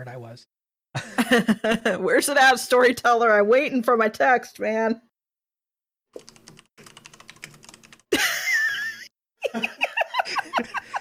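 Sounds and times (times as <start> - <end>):
speech: 0.0 - 5.1, 9.5 - 9.7
laughter: 1.0 - 2.0, 8.1 - 10.9
rapid typing on a computer keyboard: 6.2 - 8.1.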